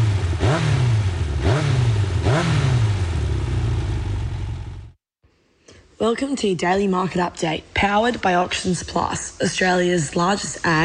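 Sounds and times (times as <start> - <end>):
Yamaha motorcycle engine revving over a rumbling idle: 0.0 - 5.0
speech: 6.0 - 10.8.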